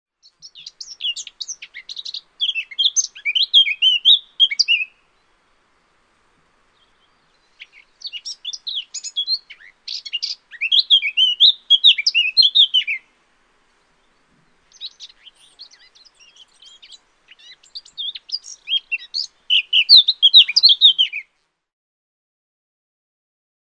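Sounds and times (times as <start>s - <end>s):
Eurasian blackcap: 0.2s - 5.2s, 6.8s - 13.1s, 13.9s - 21.3s.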